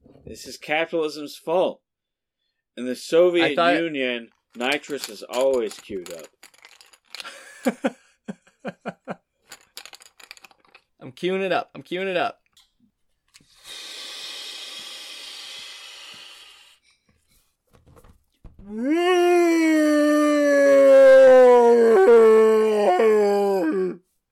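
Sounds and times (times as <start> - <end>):
speech: 0.3 - 1.8, 2.8 - 6.4, 7.6 - 8.0, 11.0 - 12.4, 18.7 - 20.6
steady breathy hiss: 13.4 - 17.0
drawn-out monster roar voiced by a person: 18.7 - 24.0.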